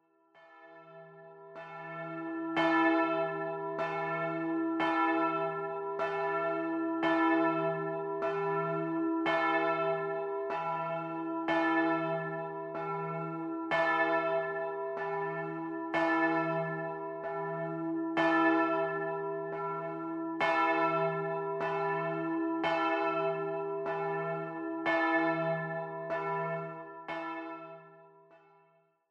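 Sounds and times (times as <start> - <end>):
pastor's bell ringing: 0.4 - 28.6.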